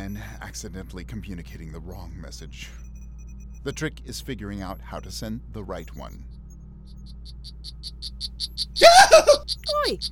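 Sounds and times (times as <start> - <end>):
low steady hum: 0.0 - 10.1
speech: 0.5 - 2.9, 3.6 - 6.3, 8.8 - 10.1
poison frog calling in high buzzy chirps: 6.1 - 10.1.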